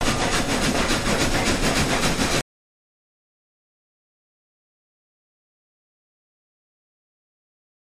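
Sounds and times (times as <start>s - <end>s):
steam locomotive chuffing: 0.0s - 2.4s.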